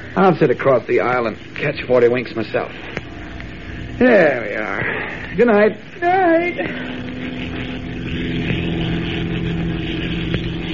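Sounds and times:
speech: 0.2s - 3.0s, 4.0s - 7.1s
twin-engine transport plane propeller engines droning in flight: 2.2s - 10.7s.

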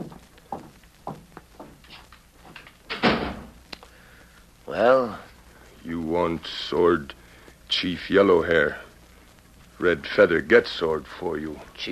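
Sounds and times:
soft footsteps crossing the room: 0.0s - 4.6s
door swinging and shutting with a solid thud: 2.9s - 3.6s
speech: 4.7s - 5.2s, 5.8s - 8.8s, 9.8s - 11.9s.

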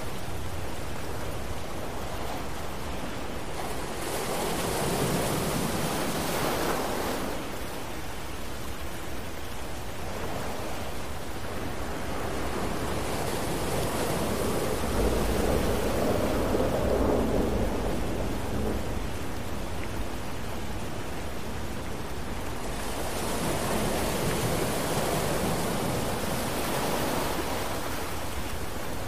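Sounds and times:
ocean waves washing in: 0.0s - 29.0s
steady rain hissing: 0.0s - 29.0s.

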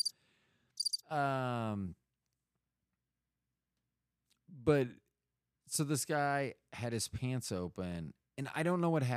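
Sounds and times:
high rapid cricket chirps: 0.8s - 1.0s
speech: 1.1s - 2.0s, 4.5s - 5.0s, 5.7s - 9.1s.

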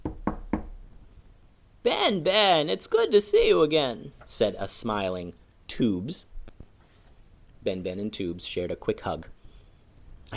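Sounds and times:
knocking on the door of a black rock home: 0.0s - 0.8s
speech: 1.8s - 6.3s, 7.6s - 9.4s.

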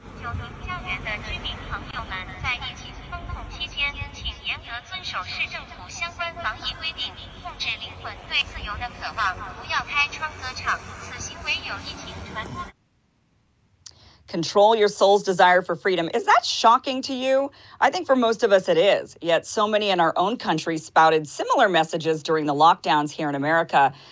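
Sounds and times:
amplified voice broadcasting an announcement from a drone loudspeaker over a city: 0.0s - 12.7s
steady low rumble: 0.0s - 12.7s
speech: 5.2s - 12.7s, 14.3s - 24.0s.

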